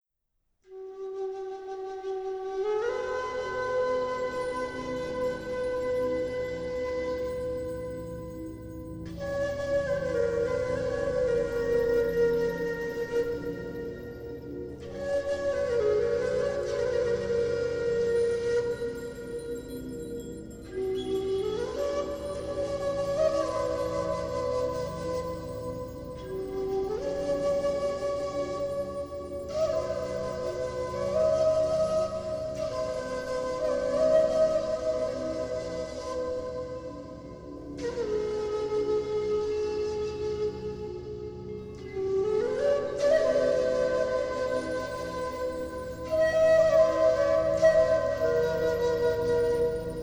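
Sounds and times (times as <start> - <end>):
flute tuned to 432 Hz: 0.6 - 50.0.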